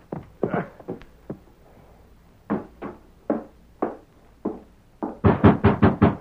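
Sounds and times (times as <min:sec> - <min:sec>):
knocking on the wooden door of a sheriff's home: 0:02.5 - 0:06.1.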